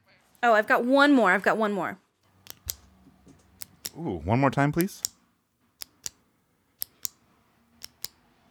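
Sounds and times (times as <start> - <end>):
speech: 0.4 - 2.0, 4.0 - 5.1
retractable pen button clicking: 2.4 - 3.0, 3.6 - 4.0, 4.8 - 5.2, 5.8 - 6.2, 6.8 - 7.2, 7.8 - 8.2.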